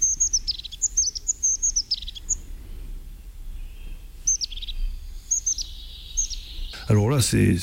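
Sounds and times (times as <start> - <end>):
crested tit calls in thin high notes: 0.0 - 2.5, 3.2 - 7.6
speech: 6.9 - 7.6.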